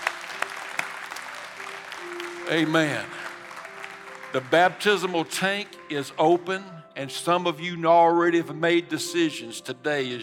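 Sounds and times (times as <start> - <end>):
congregation applauding during a church service: 0.0 - 6.9
speech: 2.5 - 3.2, 4.3 - 10.2.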